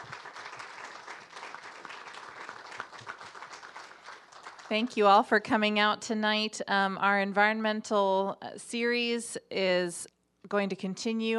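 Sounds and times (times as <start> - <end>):
audience applause for a discussion panel at an evening event: 0.0 - 5.0
speech: 4.7 - 11.3.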